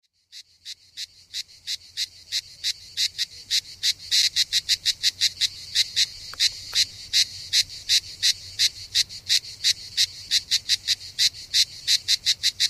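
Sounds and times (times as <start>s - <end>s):
cicada call: 0.3s - 12.6s.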